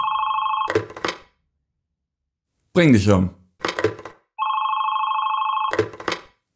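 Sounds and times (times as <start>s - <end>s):
telephone bell ringing: 0.0s - 1.0s, 4.4s - 6.0s
speech: 2.8s - 3.4s.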